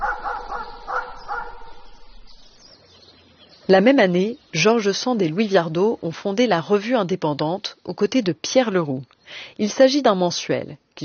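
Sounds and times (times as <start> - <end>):
small household dog yapping: 0.0 - 1.8
speech: 3.7 - 11.0.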